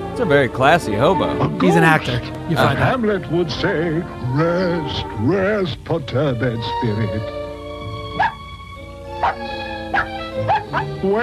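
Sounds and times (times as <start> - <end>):
speech: 0.2 - 7.4, 11.0 - 11.2
puppy giving short high yips: 8.1 - 8.4, 9.2 - 10.9.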